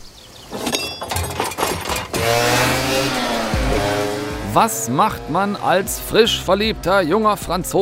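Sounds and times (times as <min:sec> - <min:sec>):
clanks and rattles: 0:00.5 - 0:02.9
moped small two-stroke engine starting and revving as it pulls away: 0:01.9 - 0:06.9
speech: 0:04.5 - 0:07.8.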